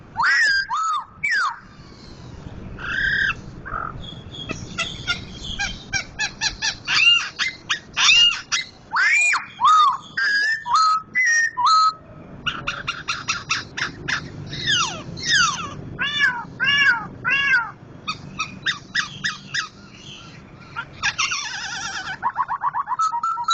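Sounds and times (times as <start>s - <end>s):
Sumatran White-crested laughingthrush song with whistles and harsh chatter: 0.0s - 23.5s.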